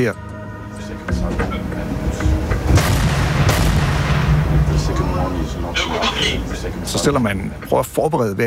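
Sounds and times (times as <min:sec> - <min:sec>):
speech: 0:00.0 - 0:00.2, 0:00.8 - 0:02.8, 0:04.8 - 0:08.4
continuous loud rumble: 0:00.2 - 0:08.4
large naval gun on a frigate firing a shell during a firing exercise off North Zealand: 0:02.7 - 0:04.7.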